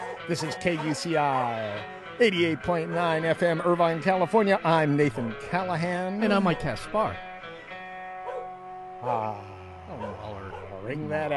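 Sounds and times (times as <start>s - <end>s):
dog barking: 0.0s - 1.8s, 8.2s - 8.5s, 9.9s - 10.9s
speech: 0.3s - 7.3s, 9.0s - 11.3s.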